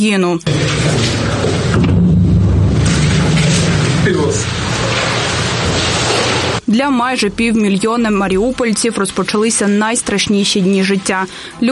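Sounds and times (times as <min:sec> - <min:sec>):
speech: 0:00.0 - 0:01.2, 0:04.1 - 0:04.8, 0:06.7 - 0:11.7
artillery shelling explosions in Mariupol at night: 0:00.5 - 0:06.6.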